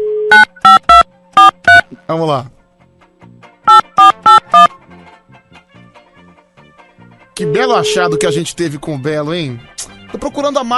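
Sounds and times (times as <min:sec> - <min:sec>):
telephone being dialed: 0:00.3 - 0:01.8, 0:03.7 - 0:04.7, 0:07.4 - 0:08.4
speech: 0:02.0 - 0:02.6, 0:07.7 - 0:10.7.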